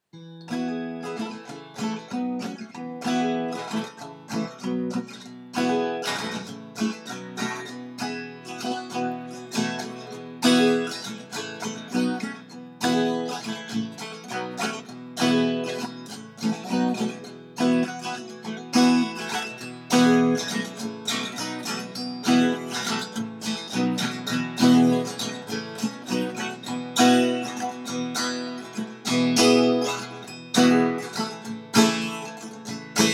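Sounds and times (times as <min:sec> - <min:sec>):
guitar playing a niggun melody: 0:00.1 - 0:33.1.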